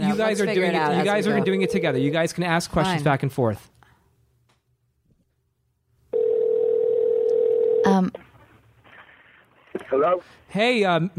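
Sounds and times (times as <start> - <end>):
speech: 0.2 - 3.8, 7.9 - 8.3, 9.8 - 11.1
telephone dial tone while a call is being placed: 6.2 - 7.8.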